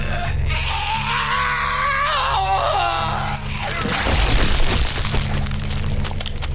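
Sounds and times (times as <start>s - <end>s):
man's thin wavering exhausted wail: 0.0s - 3.6s
loud burst of cracking breaking noise: 3.3s - 6.5s.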